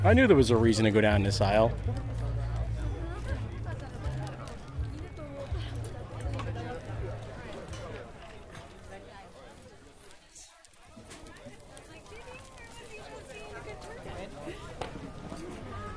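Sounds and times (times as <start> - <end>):
speech: 0.0 - 2.2
outdoor crowd murmur at a flea market in Pasadena California: 0.0 - 15.9
footsteps at a flea market: 1.4 - 15.9.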